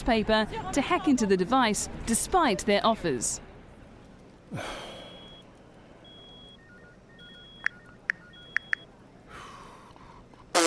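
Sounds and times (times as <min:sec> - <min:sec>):
speech: 0:00.0 - 0:03.5, 0:04.5 - 0:04.9
sigh: 0:04.5 - 0:05.2
heavy breath: 0:04.5 - 0:05.3, 0:09.3 - 0:10.3
mobile phone notification beeps and clicks: 0:06.1 - 0:08.8.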